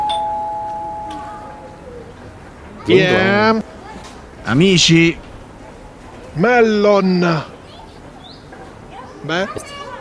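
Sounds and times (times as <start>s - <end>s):
electronic doorbell chime: 0.0s - 1.8s
speech: 2.9s - 3.7s, 4.5s - 5.2s, 6.4s - 7.5s, 9.2s - 9.8s.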